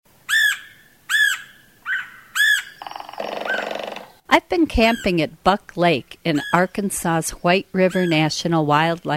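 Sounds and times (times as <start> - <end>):
red-headed woodpecker giving harsh rasping calls: 0.3 - 5.2, 6.2 - 6.8, 7.8 - 8.5
red-headed woodpecker rapid buzzy chattering rattle: 1.2 - 5.2, 7.8 - 8.4
speech: 4.3 - 9.1.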